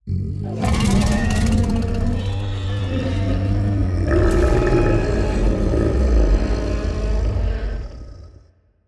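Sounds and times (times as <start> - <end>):
adult kaiju death cry: 0.4 - 8.4.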